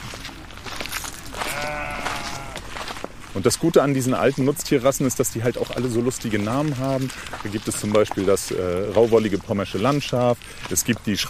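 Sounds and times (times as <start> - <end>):
sheep bleating: 1.3 - 2.8
speech: 3.4 - 11.2.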